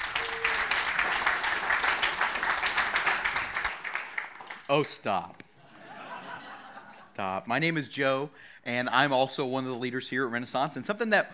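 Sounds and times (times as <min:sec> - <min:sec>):
audience applause: 0:00.0 - 0:04.6
speech: 0:04.7 - 0:05.4, 0:07.2 - 0:11.3
laughter: 0:05.6 - 0:07.1.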